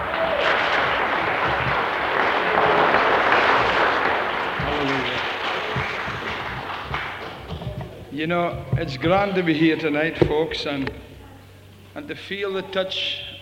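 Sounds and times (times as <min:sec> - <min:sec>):
large audience clapping: 0:00.0 - 0:08.2
speech: 0:08.2 - 0:11.1, 0:12.0 - 0:13.4.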